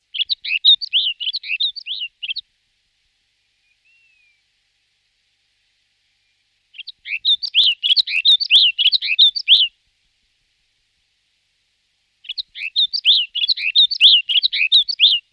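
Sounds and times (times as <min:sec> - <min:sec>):
snow bunting singing: 0:00.0 - 0:02.5, 0:03.2 - 0:09.8, 0:12.1 - 0:15.3.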